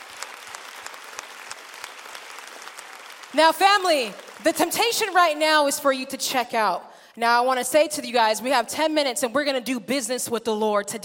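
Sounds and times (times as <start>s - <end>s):
room full of people clapping steadily: 0.0s - 5.1s
speech: 3.3s - 11.0s.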